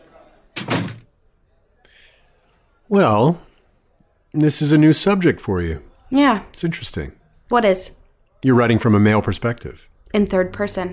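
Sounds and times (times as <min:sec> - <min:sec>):
faint room murmur: 0:00.0 - 0:10.9
door opening: 0:00.6 - 0:01.1
speech: 0:02.9 - 0:03.5, 0:04.4 - 0:10.9.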